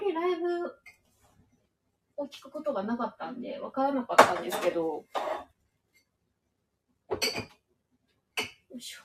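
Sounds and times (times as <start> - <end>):
speech: 2.2 - 5.4, 8.8 - 9.0
dishes clattering as they are unloaded from a dishwasher: 4.2 - 5.5, 7.1 - 7.6.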